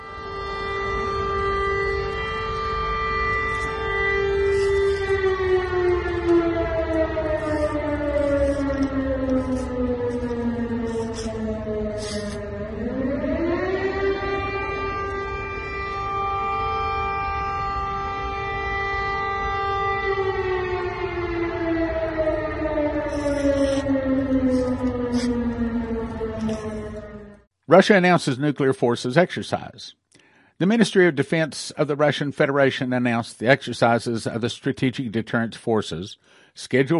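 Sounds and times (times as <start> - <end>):
air-raid sirens wailing over Donetsk: 0.0 - 27.5
speech: 27.8 - 30.0, 30.6 - 36.9.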